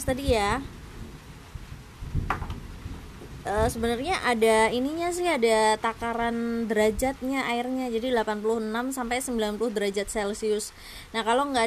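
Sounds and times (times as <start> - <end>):
speech: 0.0 - 0.8, 3.4 - 11.6
thunder rumbling: 0.0 - 7.2.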